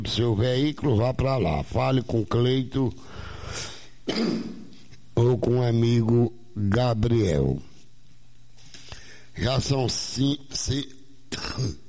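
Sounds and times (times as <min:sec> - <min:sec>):
speech: 0:00.1 - 0:04.6, 0:05.2 - 0:07.7, 0:09.4 - 0:11.0, 0:11.6 - 0:11.8
raspy cough with a throat-clearing quality: 0:04.0 - 0:04.7, 0:11.3 - 0:11.8.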